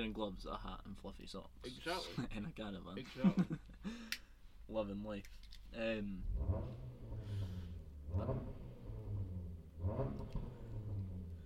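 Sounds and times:
speech: 0.0 - 7.0, 8.1 - 8.6, 9.8 - 10.6
car engine revving outdoors: 6.2 - 11.4.

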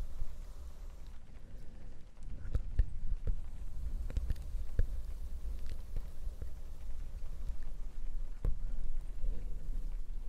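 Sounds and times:
rustling on the mic: 0.0 - 10.2
steady rain: 0.0 - 10.2.

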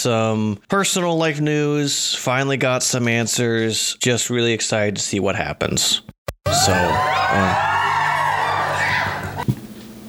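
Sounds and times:
speech: 0.0 - 7.8
crowd whooping and cheering sound effect from a soundboard: 6.5 - 9.4
short thump: 9.4 - 10.0.

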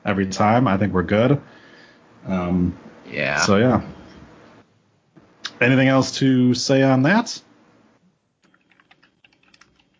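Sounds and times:
speech: 0.0 - 1.6, 2.2 - 4.0, 5.6 - 7.5
typing on a computer keyboard: 8.4 - 9.9.

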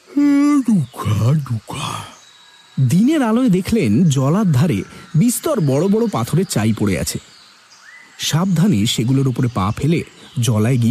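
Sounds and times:
man yawning while waking and sitting up: 0.0 - 1.0
man murmuring and sighing: 0.0 - 2.2
speech: 0.7 - 2.1, 2.8 - 7.4, 8.2 - 10.8.

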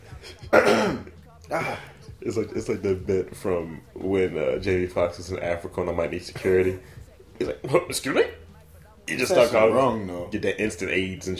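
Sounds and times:
harsh throat-clearing cough: 0.4 - 1.9
speech: 0.6 - 8.4, 9.1 - 11.3.

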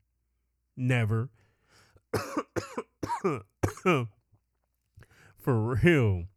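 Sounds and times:
speech: 0.8 - 1.4, 2.1 - 4.2, 5.4 - 6.3
harsh rasping coughs: 2.2 - 4.2.

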